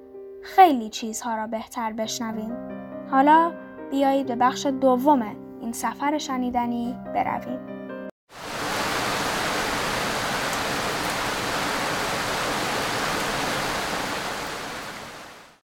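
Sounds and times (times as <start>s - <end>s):
speech: 0.4s - 8.5s
steady rain falling behind a window: 8.3s - 15.6s.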